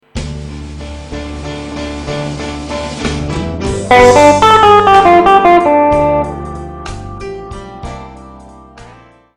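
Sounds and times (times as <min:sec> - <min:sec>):
guitar lick: 0:03.8 - 0:07.9.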